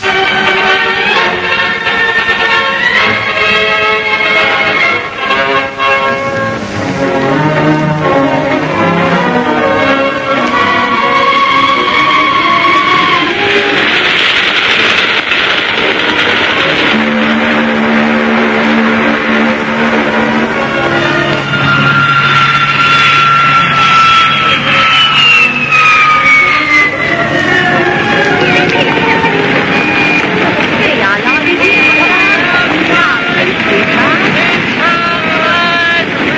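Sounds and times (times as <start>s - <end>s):
busy city street traffic roar with engine rumble: 0.0s - 36.3s
long gliding whine: 0.0s - 36.3s
tonal hooting: 7.2s - 14.1s, 16.6s - 36.3s.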